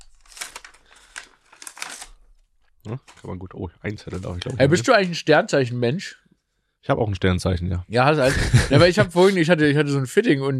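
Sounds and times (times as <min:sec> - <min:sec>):
numbered paper envelope being opened, crinkling and tearing: 0:00.0 - 0:02.4, 0:03.0 - 0:03.3, 0:04.0 - 0:05.2
speech: 0:02.8 - 0:06.2, 0:06.9 - 0:10.5
laughter: 0:08.2 - 0:10.0.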